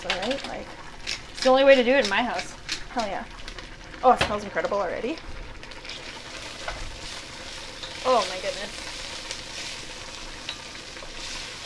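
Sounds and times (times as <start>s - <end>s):
food sautéing and sizzling in a pot: 0.0s - 11.6s
speech: 0.2s - 3.4s, 4.0s - 5.3s, 8.0s - 8.8s.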